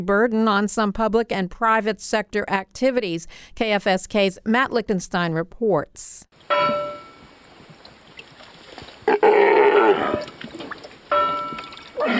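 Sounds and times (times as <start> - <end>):
speech: 0.0 - 6.9
wind: 6.3 - 12.1
faint water: 6.4 - 12.1
Steller sea lions roaring on a red and white buoy in Alaska: 9.0 - 10.4, 12.0 - 12.1.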